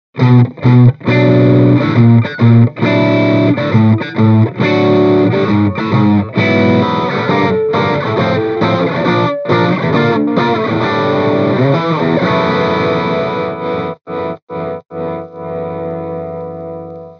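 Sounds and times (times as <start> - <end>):
overdriven electric guitar through a mini amplifier: 0.2 - 17.1.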